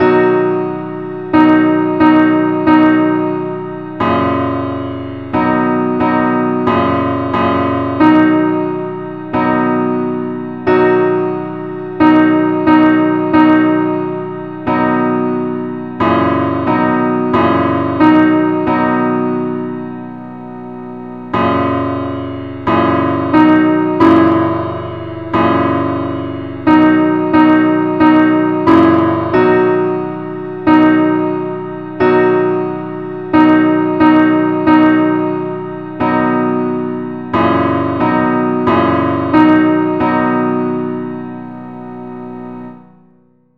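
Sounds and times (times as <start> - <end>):
simple musical accompaniment in the key of B: 0.0 - 43.5.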